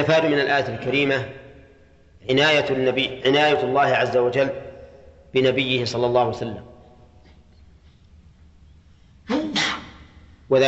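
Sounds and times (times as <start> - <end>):
speech: 0.0 - 1.4, 2.2 - 4.7, 5.3 - 6.7, 10.5 - 10.6
single sharp sneeze: 9.3 - 10.1.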